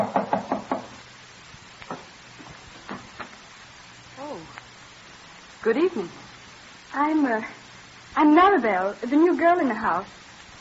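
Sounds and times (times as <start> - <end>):
firm knocks on a door: 0.0 - 1.0
speech: 5.6 - 6.2, 6.9 - 7.6, 8.2 - 10.2.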